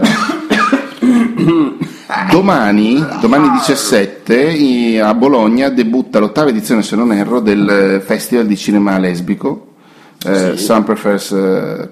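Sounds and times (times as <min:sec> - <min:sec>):
person coughing: 0:00.0 - 0:02.1
speech: 0:01.1 - 0:11.9.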